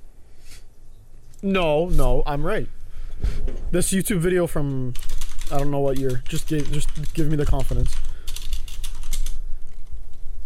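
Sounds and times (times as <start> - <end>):
quieter noise: 0.0 - 10.4
speech: 1.4 - 2.8, 3.7 - 8.2
typing on a computer keyboard: 4.9 - 10.2.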